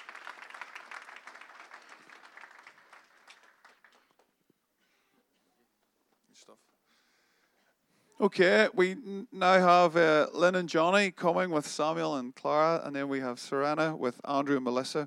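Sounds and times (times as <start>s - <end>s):
audience applause: 0.0s - 4.4s
speech: 8.2s - 15.0s.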